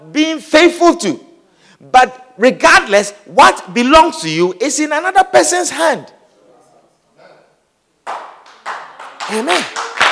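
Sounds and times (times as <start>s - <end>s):
speech: 0.1s - 6.2s, 9.3s - 9.8s
audience clapping: 8.0s - 10.0s.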